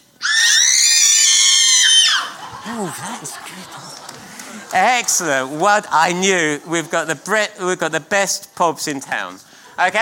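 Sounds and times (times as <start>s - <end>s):
crowd of children screaming at full volume: 0.2s - 2.5s
laughter: 2.1s - 8.1s
speech: 2.7s - 10.0s.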